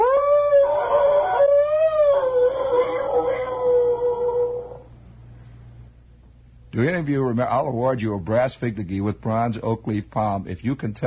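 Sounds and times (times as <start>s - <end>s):
timber wolf howling: 0.0s - 4.9s
speech: 6.8s - 11.0s.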